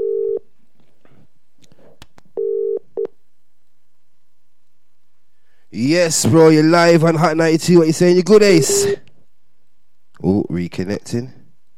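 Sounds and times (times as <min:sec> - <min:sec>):
phone line electronic double-burst ringing tone: 0:00.0 - 0:00.4, 0:02.4 - 0:03.1
speech: 0:05.7 - 0:09.0, 0:10.2 - 0:11.4.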